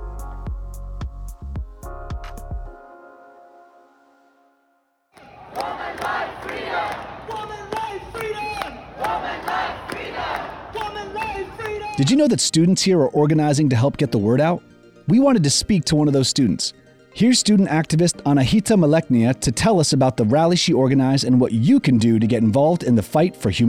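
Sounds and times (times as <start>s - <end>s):
short burst of music with drum hits: 0.5s - 2.7s
large crowd cheering at an airport: 5.2s - 12.3s
speech: 12.0s - 23.6s.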